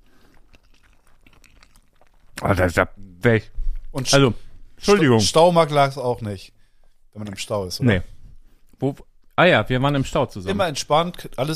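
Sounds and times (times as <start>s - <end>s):
closed-mouth chewing: 0.0s - 2.8s
speech: 2.4s - 6.6s, 7.2s - 8.1s, 8.8s - 11.5s.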